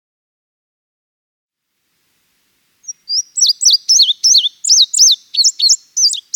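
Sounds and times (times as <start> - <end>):
indigo bunting singing: 2.8 - 6.3.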